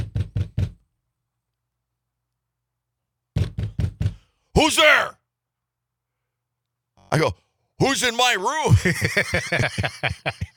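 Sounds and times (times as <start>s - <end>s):
firm knocking on a door: 0.0s - 0.8s, 3.3s - 4.3s
speech: 4.6s - 5.2s, 7.1s - 10.5s
laughter: 8.6s - 10.5s.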